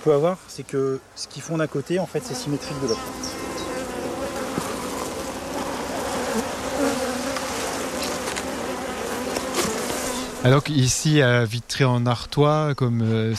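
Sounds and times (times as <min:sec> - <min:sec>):
speech: 0:00.0 - 0:03.4, 0:10.4 - 0:13.3
many honeybees buzzing on a hive frame: 0:02.0 - 0:10.8.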